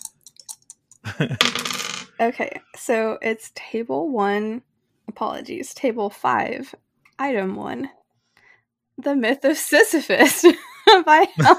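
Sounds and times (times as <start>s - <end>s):
eight-sided and four-sided dice clattering on a hard surface: 0.0s - 2.1s
laughter: 1.0s - 1.4s, 10.5s - 11.5s
speech: 1.2s - 8.0s, 9.0s - 11.5s.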